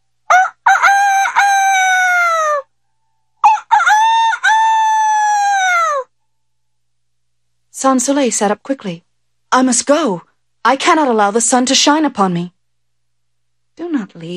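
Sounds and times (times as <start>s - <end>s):
rooster crowing at dawn: 0.3s - 2.7s, 3.4s - 6.1s
speech: 7.8s - 12.6s, 14.1s - 14.3s.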